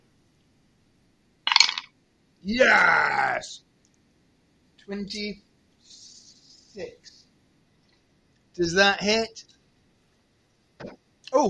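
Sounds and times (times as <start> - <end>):
dice rolling on a hard table: 1.5 - 1.9
speech: 2.4 - 3.7, 4.9 - 6.0, 6.8 - 7.2, 8.6 - 9.5, 10.8 - 11.4.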